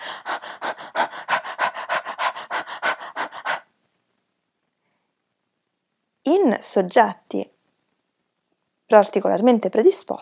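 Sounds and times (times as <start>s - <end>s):
rapid forced hyperventilation breathing: 0.0s - 3.8s
speech: 6.4s - 7.5s, 8.9s - 10.2s.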